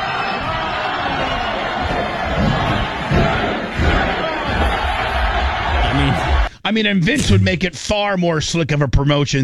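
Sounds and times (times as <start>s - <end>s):
large arena crowd roaring and cheering at a wrestling show: 0.0s - 6.5s
heavy thuds: 0.3s - 6.6s
speech: 6.7s - 9.4s.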